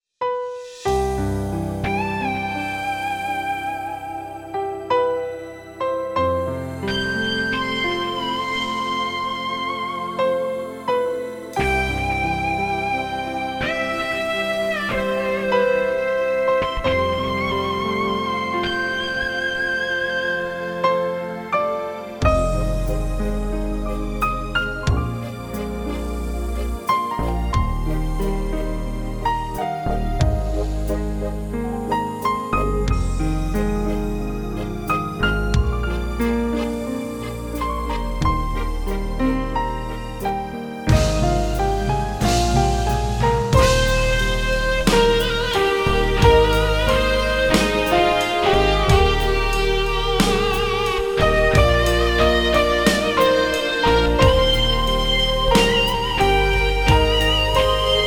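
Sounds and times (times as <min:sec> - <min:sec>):
ballad: 0:00.3 - 0:58.0.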